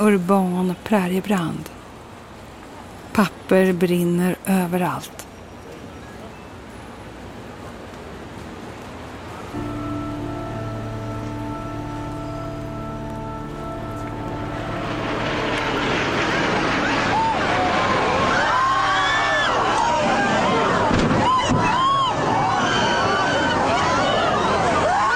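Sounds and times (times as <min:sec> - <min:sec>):
speech: 0:00.0 - 0:01.8, 0:03.1 - 0:05.2
steady engine hum: 0:06.7 - 0:21.6
jet airliner roar flying into tower: 0:09.5 - 0:25.0.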